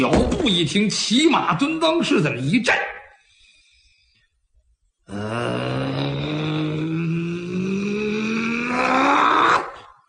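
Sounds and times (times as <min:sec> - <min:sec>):
speech: 0:00.0 - 0:03.0
person imitating a man's powerful growling roar: 0:05.1 - 0:10.0.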